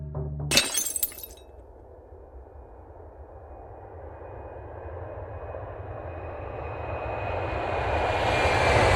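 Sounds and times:
glass breaking: 0.5s - 1.4s
low-flying airplane engine roar: 1.8s - 8.9s.

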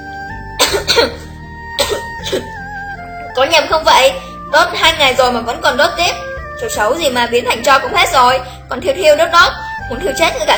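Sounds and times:
dry coughing fit in smoky air: 0.6s - 2.6s
speech: 0.8s - 1.2s, 1.8s - 2.6s, 3.4s - 10.5s.

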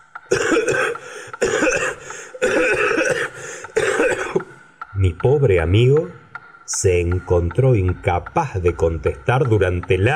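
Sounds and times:
harsh coughing fit with rough hacking coughs: 0.3s - 4.6s
throat clearing: 0.3s - 4.6s
speech: 5.2s - 10.1s.

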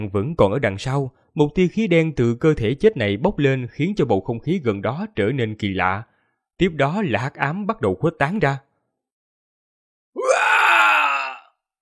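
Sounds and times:
speech: 0.0s - 8.7s
agonized scream: 10.2s - 11.6s.

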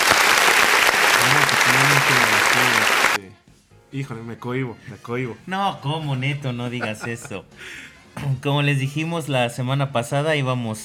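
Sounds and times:
talk show audience applause welcoming a guest: 0.0s - 3.2s
laughter: 1.0s - 3.2s, 6.5s - 7.8s
speech: 3.9s - 10.8s.

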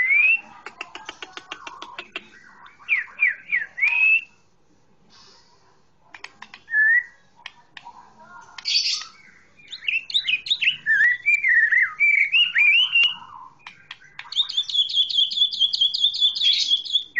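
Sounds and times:
Oriental magpie-robin song with clicking ticks and whistled slurs: 0.0s - 4.4s, 8.4s - 17.1s.

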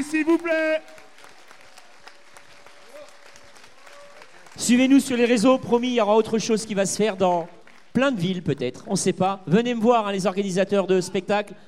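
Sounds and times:
speech: 0.0s - 0.9s, 4.6s - 11.6s
audience applause at a live tribute concert: 0.0s - 6.0s.

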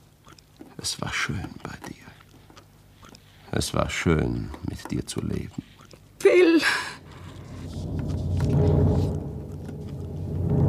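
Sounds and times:
speech: 0.8s - 2.0s, 3.6s - 5.7s
thunder rumbling from an approaching thunderstorm: 7.0s - 10.6s.

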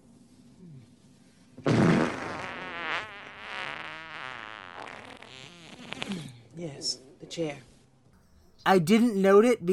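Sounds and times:
fart sound effect from a film comedy scene: 1.6s - 6.3s
speech: 6.6s - 7.7s, 8.6s - 9.7s.

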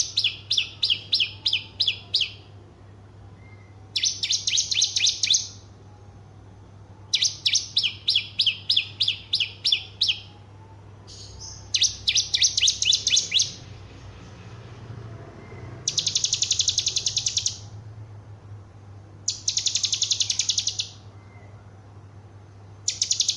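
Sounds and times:
Horsfield's bush lark singing: 0.0s - 2.5s, 3.4s - 5.6s, 7.0s - 10.4s, 11.1s - 13.8s, 15.5s - 17.7s, 19.3s - 21.5s, 22.9s - 23.3s.

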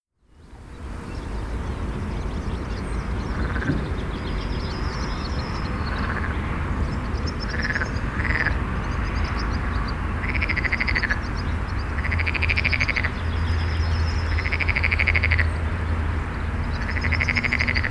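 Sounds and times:
traffic on a busy road in Rønne Denmark: 0.5s - 17.9s
frog croaking next to a busy road in Rønne Denmark: 3.3s - 3.8s, 5.8s - 6.6s, 7.2s - 15.7s, 16.6s - 17.9s.

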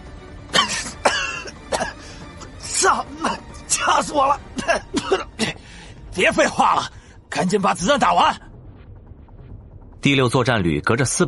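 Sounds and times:
people in a vehicle compartment coughing from the smoke of a thermobaric round: 0.5s - 2.0s, 4.5s - 5.6s
speech: 2.8s - 5.5s, 6.2s - 8.4s, 10.0s - 11.2s.

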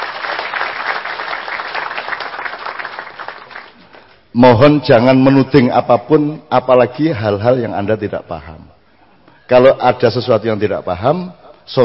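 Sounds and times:
audience applause at a talk event: 0.0s - 3.9s
speech: 4.4s - 8.8s, 9.5s - 11.8s.

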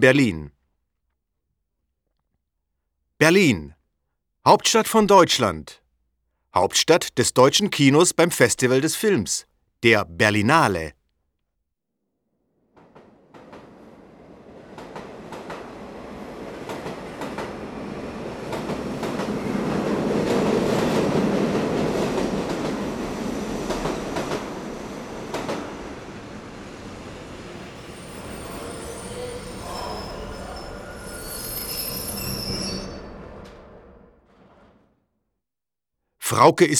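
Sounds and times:
speech: 0.0s - 0.6s, 3.2s - 3.8s, 4.4s - 5.8s, 6.5s - 11.0s, 36.3s - 36.7s
train rolling into Berlin Hauptbahnhof with rumbling clatter: 12.7s - 28.9s
shrill train wheel squeals: 19.2s - 19.8s, 27.6s - 34.1s.

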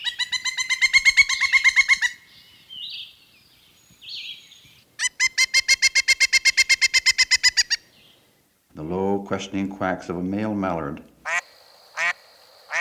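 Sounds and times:
pileated woodpecker calling loudly before going to roost: 0.0s - 8.3s, 11.2s - 12.8s
speech: 8.8s - 11.1s.

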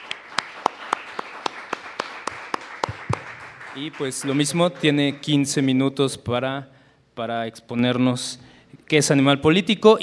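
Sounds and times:
applause: 0.0s - 5.6s
speech: 3.8s - 10.0s.

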